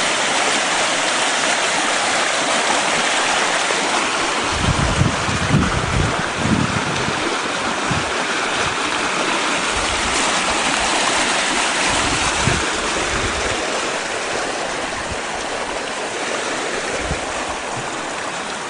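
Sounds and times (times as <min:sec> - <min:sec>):
water rushing through a small creek: 0:00.0 - 0:18.6.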